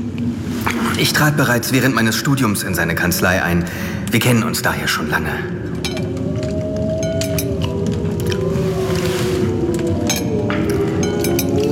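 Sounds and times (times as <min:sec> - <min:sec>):
speech: 0:01.0 - 0:05.7
several wolves howling together: 0:05.7 - 0:11.6.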